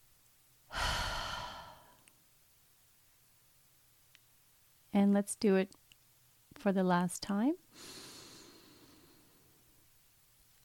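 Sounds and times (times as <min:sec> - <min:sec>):
deep breath released as a soft sigh during a guided relaxation exercise: 0:00.7 - 0:02.1, 0:07.8 - 0:09.5
speech: 0:04.9 - 0:05.8, 0:06.6 - 0:08.0.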